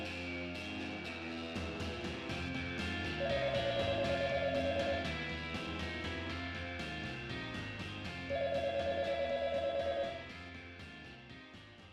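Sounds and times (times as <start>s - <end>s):
music: 0.0s - 11.9s
telephone ringing in trilling bursts: 3.2s - 5.1s, 8.3s - 10.2s.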